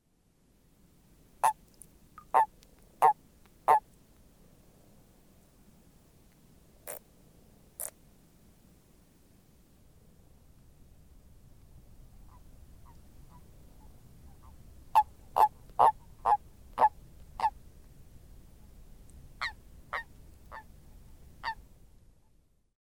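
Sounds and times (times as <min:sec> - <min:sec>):
Bufo bufo common toad croaking: 0:02.2 - 0:03.8, 0:15.0 - 0:17.6.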